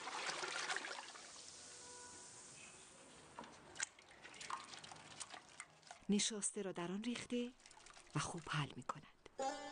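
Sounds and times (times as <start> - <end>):
drips and splashes: 0.0 - 1.6, 3.4 - 8.9
water and rosewater poured into a large cauldron: 0.0 - 1.6, 3.6 - 6.3, 7.5 - 8.6
speech: 6.1 - 7.6, 8.2 - 9.6.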